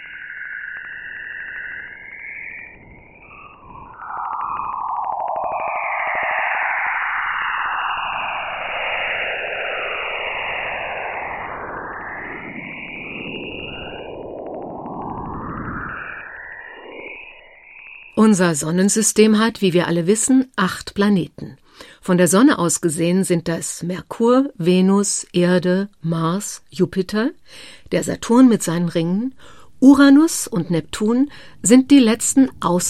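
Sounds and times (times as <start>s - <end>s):
recorded radio noise of a planetary aurora with swooping whistling tones: 0.0s - 18.4s, 26.6s - 32.8s
speech: 18.3s - 32.8s.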